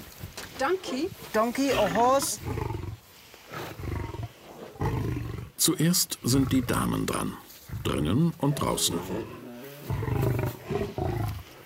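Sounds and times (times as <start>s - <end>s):
speech: 0.6s - 2.7s, 5.6s - 9.4s
lion roaring at feeding time: 1.7s - 3.0s, 3.6s - 5.6s, 6.3s - 11.6s.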